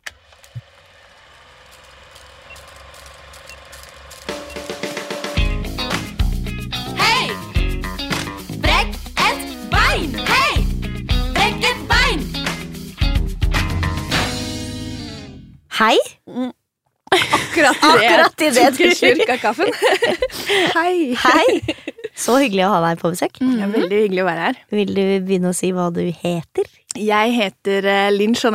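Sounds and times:
faint ticking ratchet-like clicks: 0.0s - 5.3s
loud punchy rhythmic podcast intro jingle with voice-like melodic swoops: 4.3s - 15.0s
speech: 15.8s - 16.6s, 17.2s - 28.5s
laughter: 17.1s - 22.4s.

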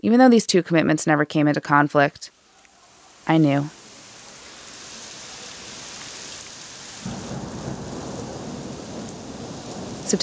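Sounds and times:
speech: 0.0s - 2.4s, 3.3s - 3.8s
steady rain in Prague: 2.3s - 10.2s
deep rumble of thunder in Prague: 2.8s - 10.2s.

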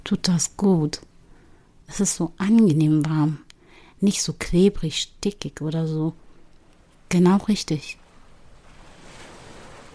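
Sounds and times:
speech: 0.1s - 1.1s, 1.9s - 6.2s, 7.1s - 8.0s
ocean surf waves breaking and spreading on a beach: 8.0s - 9.9s.

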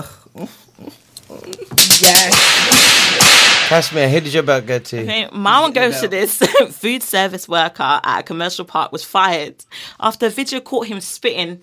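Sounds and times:
speech: 0.0s - 1.0s, 1.8s - 3.0s, 3.7s - 11.6s
whip cracks sound effect: 1.8s - 4.0s
harsh bright noise: 1.8s - 4.8s.

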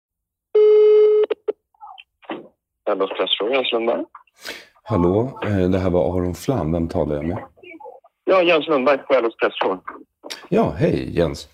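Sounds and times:
steady electronic telephone tone: 0.6s - 1.5s
speech: 2.9s - 7.5s, 8.3s - 11.5s.

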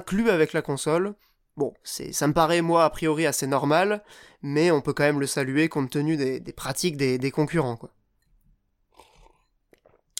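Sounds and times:
speech: 0.0s - 8.0s
person taking a small sip of a drink: 8.8s - 10.1s
wet mouth clicks: 8.9s - 10.1s.

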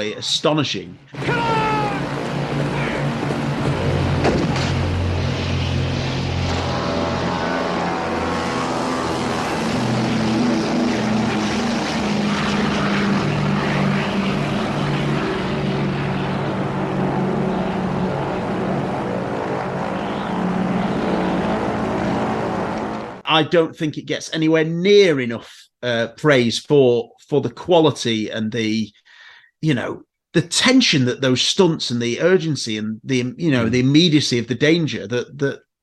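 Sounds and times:
speech: 0.0s - 1.5s, 23.4s - 29.0s, 29.6s - 35.6s
propeller airplane engine droning in a film stunt sequence: 1.0s - 23.3s.

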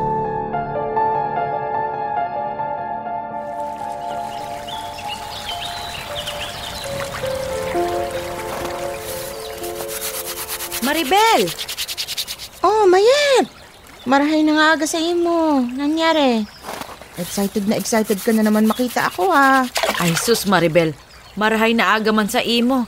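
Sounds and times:
soft sustained musical tones: 0.0s - 11.7s
water flowing in a village stream in Bicol: 3.4s - 22.8s
speech: 10.9s - 11.8s, 14.1s - 16.6s, 17.2s - 22.8s.

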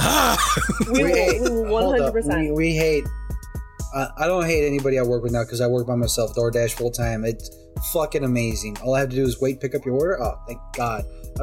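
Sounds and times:
person vocally imitating a horse neighing: 0.0s - 1.6s
laughter: 0.0s - 2.3s
speech: 0.4s - 3.2s, 3.9s - 11.4s.

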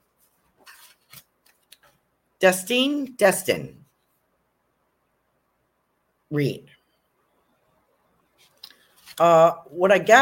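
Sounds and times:
card drawn from a deck: 0.2s - 2.0s, 8.4s - 9.2s
speech: 2.4s - 3.8s, 6.3s - 6.8s, 9.2s - 10.1s.

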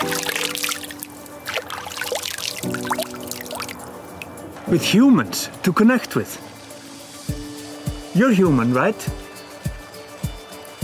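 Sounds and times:
water pouring and trickling: 0.0s - 4.5s
speech: 4.7s - 6.5s, 8.2s - 9.2s.

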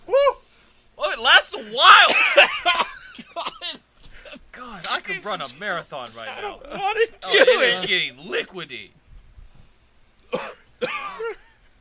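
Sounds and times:
man coughing harshly with a raspy wheeze: 2.0s - 4.4s, 7.2s - 8.0s, 10.3s - 11.6s
speech: 5.2s - 9.0s.

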